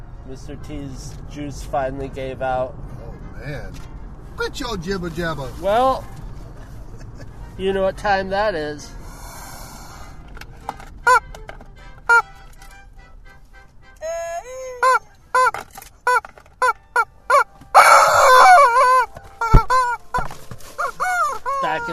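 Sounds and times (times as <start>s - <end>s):
speech: 0.3s - 6.2s, 7.6s - 9.0s
squeezed rubber chicken toy squawking: 14.7s - 21.9s.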